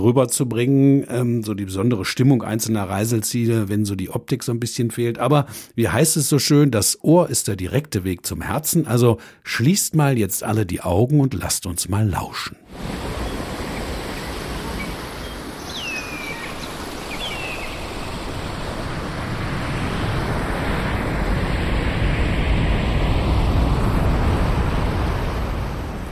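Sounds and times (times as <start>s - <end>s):
speech: 0.0s - 13.2s
rushing waterfall in tropical landscape: 12.7s - 26.1s
bird chirps: 13.2s - 18.2s.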